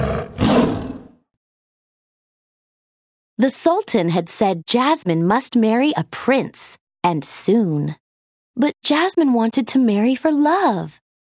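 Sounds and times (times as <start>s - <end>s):
tiger roaring: 0.0s - 1.2s
speech: 3.4s - 8.0s, 8.6s - 11.0s.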